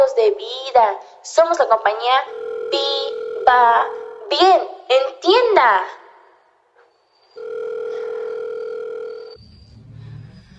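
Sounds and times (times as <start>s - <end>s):
speech: 0.0s - 6.0s
telephone ringing with a steady electronic tone: 2.1s - 4.6s, 7.4s - 9.4s.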